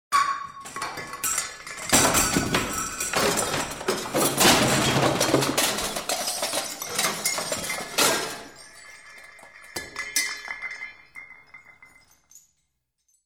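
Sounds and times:
overstuffed closet: 0:00.2 - 0:12.4.

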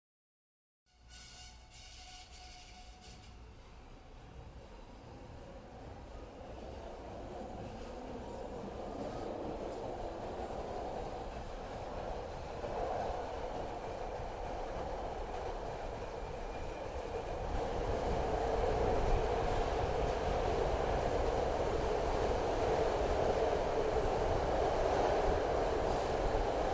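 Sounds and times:
SEPTA train starting, moving away and stopping, heard from the interior: 0:00.9 - 0:26.7.

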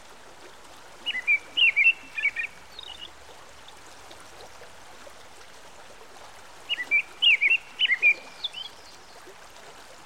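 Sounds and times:
American robin singing by a stream: 0:01.0 - 0:03.1, 0:06.7 - 0:08.8.

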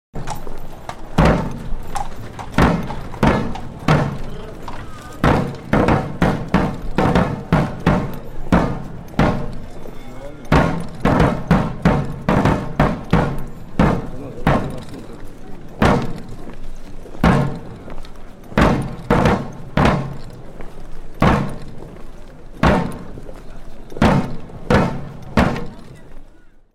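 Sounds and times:
infantry marching: 0:00.1 - 0:26.7
marching drum: 0:01.2 - 0:09.8, 0:10.5 - 0:15.0, 0:15.8 - 0:16.3, 0:17.2 - 0:17.9, 0:18.5 - 0:20.4, 0:21.2 - 0:21.9, 0:22.6 - 0:23.2, 0:23.9 - 0:25.8.

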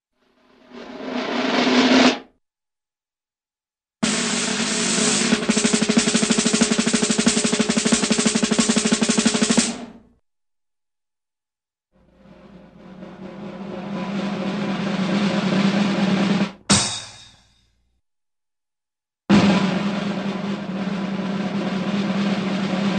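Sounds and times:
snare drum roll: 0:00.5 - 0:02.3, 0:04.0 - 0:10.1, 0:12.0 - 0:17.5, 0:19.3 - 0:22.9.

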